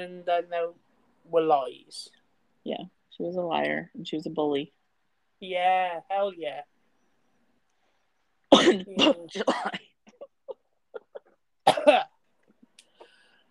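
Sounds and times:
speech: 0:00.0 - 0:04.8, 0:05.4 - 0:06.7, 0:08.5 - 0:09.9, 0:11.7 - 0:12.1
person coughing harshly: 0:08.5 - 0:10.3, 0:11.0 - 0:12.2.

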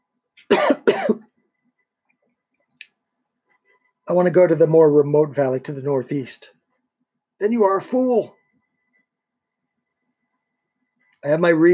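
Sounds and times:
man with a weak voice coughing hoarsely: 0:00.5 - 0:01.3
speech: 0:04.1 - 0:06.6, 0:07.4 - 0:08.4, 0:11.2 - 0:11.7.

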